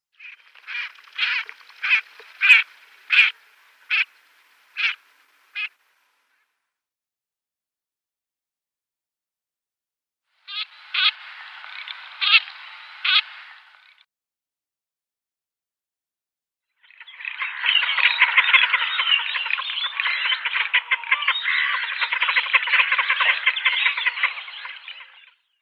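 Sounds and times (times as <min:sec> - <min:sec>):
female Garganey ducks calling: 0:00.2 - 0:05.8, 0:10.5 - 0:14.0, 0:17.0 - 0:25.3.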